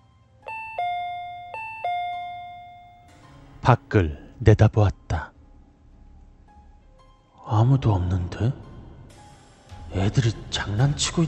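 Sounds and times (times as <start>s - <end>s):
electronic two-tone doorbell ringing: 0.4s - 3.1s
speech: 3.7s - 5.3s, 7.6s - 8.6s, 9.9s - 11.2s.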